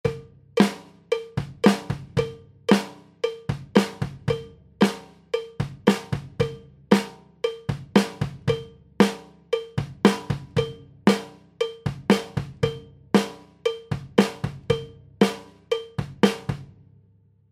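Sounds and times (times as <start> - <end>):
percussion drums: 0.0 - 16.8.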